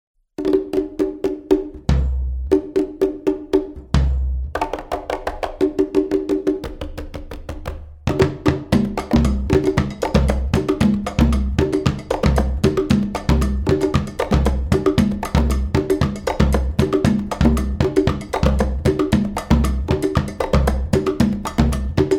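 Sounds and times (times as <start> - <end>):
conga playing habanera rhythm: 0.4 - 22.1.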